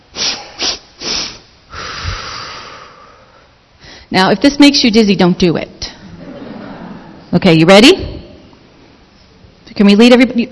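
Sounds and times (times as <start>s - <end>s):
quick sharp sniffs in through the nose in a breathing exercise: 0.1s - 2.7s
long steady breath out in a breathing exercise: 0.2s - 4.1s
speech: 4.1s - 5.8s, 7.3s - 8.1s, 9.8s - 10.5s
laughter: 6.0s - 7.3s.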